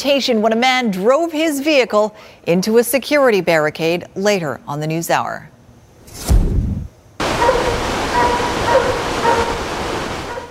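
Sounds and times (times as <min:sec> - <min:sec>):
speech: 0:00.0 - 0:05.5
dog barking: 0:07.2 - 0:10.4
steady rushing noise: 0:07.2 - 0:10.4.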